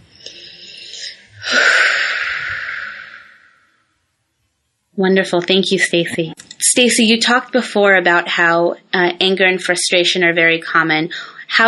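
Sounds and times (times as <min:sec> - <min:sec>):
deep breath during a guided tapping exercise: 0:00.0 - 0:03.9
speech: 0:05.0 - 0:11.6.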